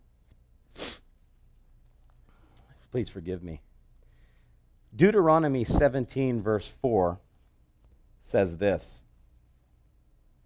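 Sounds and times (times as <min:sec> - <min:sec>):
sharp nasal sniff through a runny nose: 0:00.7 - 0:01.1
speech: 0:02.9 - 0:03.7, 0:05.0 - 0:07.3, 0:08.2 - 0:09.0.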